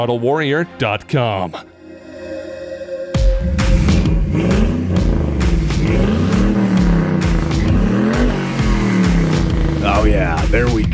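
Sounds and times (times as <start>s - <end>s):
speech: 0.0s - 1.7s, 9.8s - 10.9s
turbocharged LS V8 pickup truck engine revving without exhaust: 3.4s - 10.8s.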